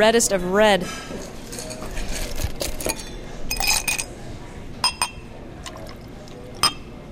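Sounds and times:
speech: 0.0s - 1.2s
sharp glassy clinks: 2.8s - 4.1s, 4.8s - 5.2s, 6.6s - 6.9s
homemade red liqueur pouring into a glass: 5.6s - 6.8s.

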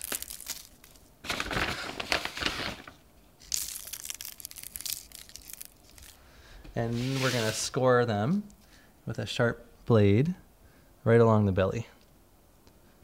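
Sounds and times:
coarse pretzel salt pressed into little balls sprinkled onto pretzels: 0.0s - 1.0s, 3.4s - 6.2s
speech: 6.8s - 10.4s, 11.0s - 11.9s.

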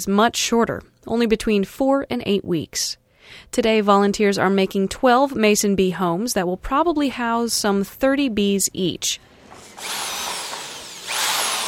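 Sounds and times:
speech: 0.0s - 10.1s
power drill boring holes for mason bee homes: 9.4s - 11.6s.

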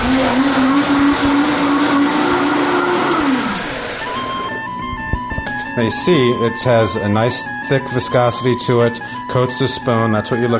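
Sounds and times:
blender running with high motor whine: 0.0s - 5.0s
speech: 5.8s - 10.5s.

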